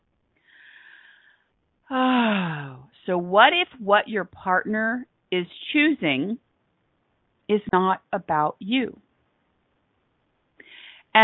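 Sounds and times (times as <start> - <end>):
deep inhaled breath: 0.4 - 1.5, 10.6 - 11.1
speech: 3.1 - 6.4, 7.5 - 9.0.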